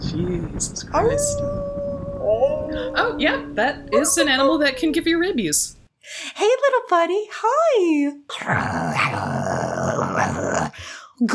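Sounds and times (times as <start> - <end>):
speech: 0.2 - 9.3, 10.2 - 11.3
person imitating a wolf's growl: 1.4 - 4.2, 8.3 - 10.8.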